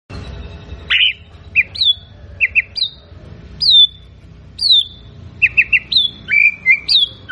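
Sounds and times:
White-rumped shama singing sliding whistles, chirps and warble: 0:00.9 - 0:03.0, 0:03.6 - 0:07.3.

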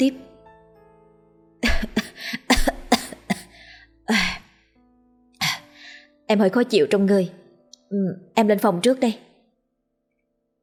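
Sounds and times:
speech: 0:00.0 - 0:00.3, 0:06.3 - 0:09.3
woman coughing into her hand: 0:01.6 - 0:03.5.

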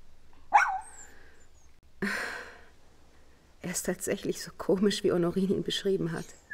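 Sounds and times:
small light-brown dog barking: 0:00.5 - 0:01.0
speech: 0:03.7 - 0:06.4.

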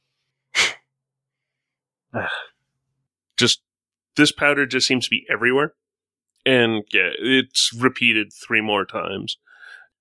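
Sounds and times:
person imitating a sneeze: 0:00.6 - 0:00.8
speech: 0:02.1 - 0:02.5, 0:03.4 - 0:03.6, 0:04.2 - 0:05.8, 0:06.4 - 0:09.9.

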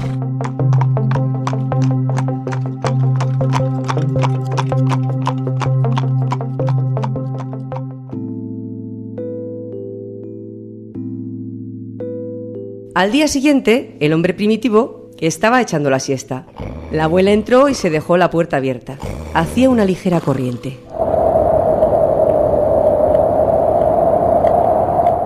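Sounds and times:
horse hooves clip-clopping while pulling a rolling log: 0:00.0 - 0:07.8
speech: 0:13.0 - 0:21.2
sustained tone: 0:20.9 - 0:25.2.

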